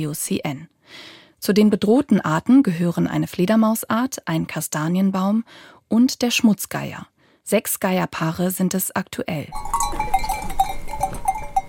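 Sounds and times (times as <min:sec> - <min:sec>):
speech: 0:00.0 - 0:10.2
goat bells clinking near the Vjosa River: 0:09.5 - 0:11.6.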